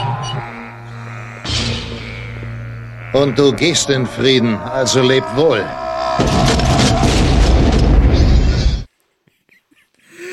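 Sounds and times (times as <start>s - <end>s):
speech: 3.1s - 6.6s
huge roaring cinematic explosion: 4.8s - 8.9s
cinematic gunshot: 6.2s - 8.6s.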